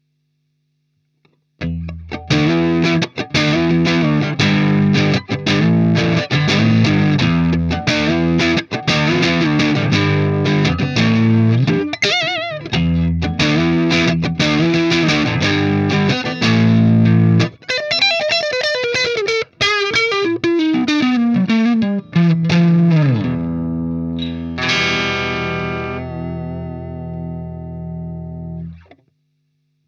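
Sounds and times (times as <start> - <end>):
Squier Duosonic electric guitar: 1.6 - 29.0.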